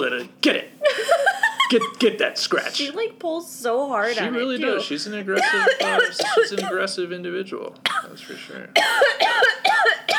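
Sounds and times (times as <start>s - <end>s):
speech: 0.0s - 0.7s, 1.7s - 9.6s
person coughing in throaty bursts: 5.4s - 6.8s, 7.9s - 8.2s, 8.8s - 10.1s.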